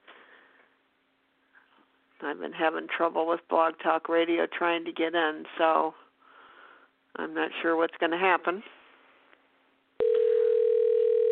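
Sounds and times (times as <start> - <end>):
speech: 2.2 - 6.0, 7.2 - 8.8
telephone line tone: 10.0 - 11.3.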